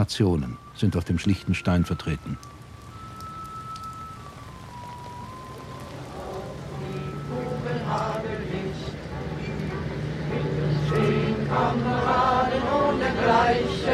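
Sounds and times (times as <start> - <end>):
speech: 0.0 - 2.5
rain pattering on umbrellas: 0.0 - 11.3
faint voices: 0.0 - 13.9.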